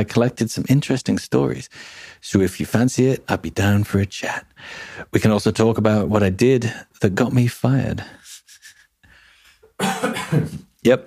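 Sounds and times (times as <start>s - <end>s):
speech: 0.0s - 8.2s, 10.3s - 11.0s
person coughing: 9.8s - 10.6s.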